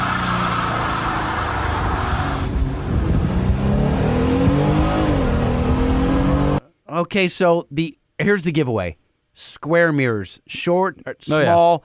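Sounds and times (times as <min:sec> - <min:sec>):
Gladiator engine roaring during a burnout: 0:00.0 - 0:06.6
big tires spinning in a burnout: 0:00.0 - 0:06.6
speech: 0:07.0 - 0:11.8.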